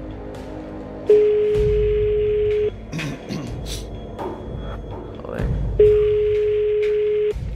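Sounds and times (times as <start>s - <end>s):
telephone line ringing tone calling a private home phone: 1.1s - 2.7s, 5.8s - 7.4s.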